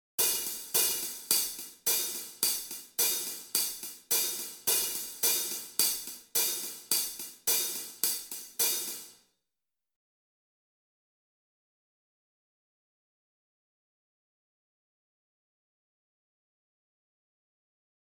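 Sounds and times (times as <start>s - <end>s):
hi-hats: 0.2s - 9.2s.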